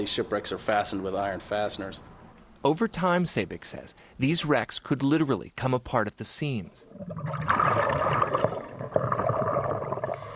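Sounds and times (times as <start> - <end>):
speech: 0.0 - 8.4
underwater gurgling bubbling water during a dive at a horse ferry shipwreck: 6.9 - 10.3.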